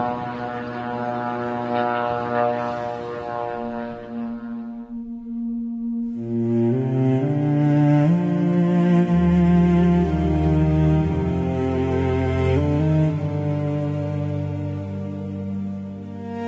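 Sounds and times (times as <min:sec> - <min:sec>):
military drones buzzing overhead: 0:00.0 - 0:16.4.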